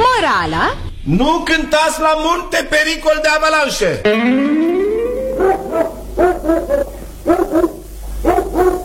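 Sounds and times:
speech: 0.2 - 4.7, 5.8 - 7.7
dog at a mountain chalet howling: 4.9 - 8.8
dog at a mountain chalet barking: 5.4 - 8.8.

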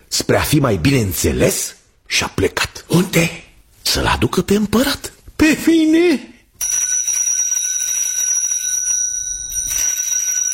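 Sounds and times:
speech: 0.3 - 6.3
small hand bell ringing: 6.6 - 10.5.

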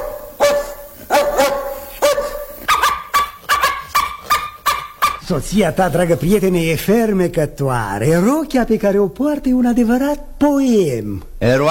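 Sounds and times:
dog barking: 0.0 - 5.2
speech: 5.3 - 11.6.

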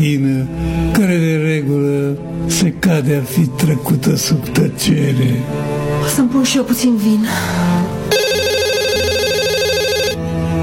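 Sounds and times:
speech: 0.0 - 8.0
mobile phone ringing with an electronic warbling trill: 8.1 - 10.2.

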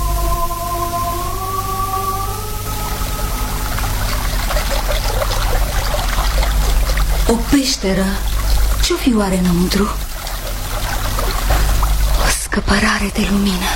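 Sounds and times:
faint sustained hum: 0.0 - 13.7
river water in a valley trickling and babbling: 2.8 - 13.7
speech: 7.5 - 8.3, 8.9 - 10.1, 12.6 - 13.7.

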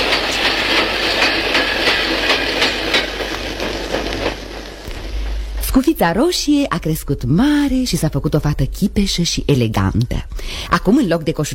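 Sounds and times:
train departing on rails with clickety-clack wheel beats: 0.0 - 8.6
speech: 5.8 - 11.5.

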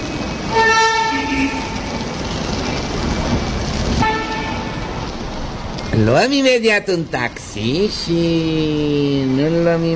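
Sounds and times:
train rumbling at a railway station: 0.0 - 9.9
train horn: 0.5 - 1.8, 4.0 - 4.7
speech: 6.0 - 9.9.

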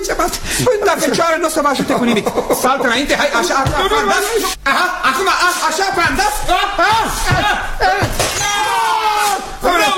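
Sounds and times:
laughter: 0.0 - 8.2
speech: 0.1 - 8.6
vase shattering: 5.4 - 9.6.

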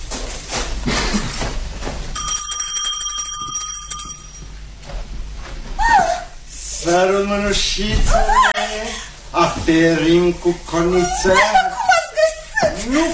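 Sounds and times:
low hum: 0.0 - 13.1
small hand bell ringing at a door: 2.2 - 4.6
speech: 6.9 - 11.6, 12.9 - 13.1
laughter: 8.0 - 8.9, 10.8 - 13.1.

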